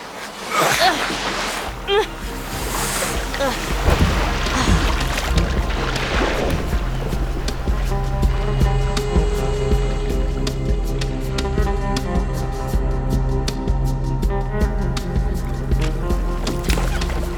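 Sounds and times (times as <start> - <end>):
rowboat oars sloshing and splashing through water: 0.0 - 10.9, 14.8 - 17.3
low rumble: 2.2 - 17.3.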